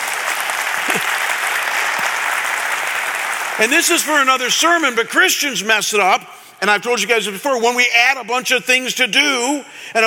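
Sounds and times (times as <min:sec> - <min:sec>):
audience clapping during a sermon: 0:00.0 - 0:04.8
speech: 0:03.6 - 0:10.0.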